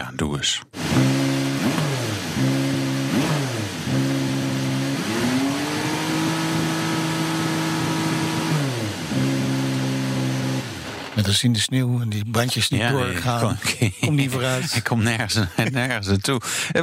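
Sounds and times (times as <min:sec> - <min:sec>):
speech: 0:00.1 - 0:01.8, 0:11.3 - 0:16.8
twin-turbo 3.5-litre V6 race car engine revving: 0:00.8 - 0:11.2
laughter: 0:12.7 - 0:16.8.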